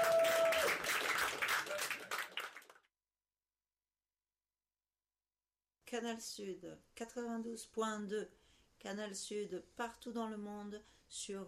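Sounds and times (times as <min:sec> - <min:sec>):
crowd applauding with dense steady clapping: 0:00.0 - 0:02.8
speech: 0:05.9 - 0:11.4.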